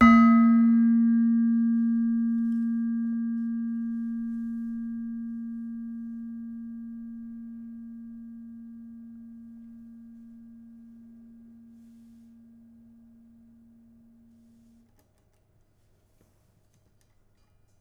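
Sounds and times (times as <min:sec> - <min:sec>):
demung gamelan metallophone: 0:00.0 - 0:11.8.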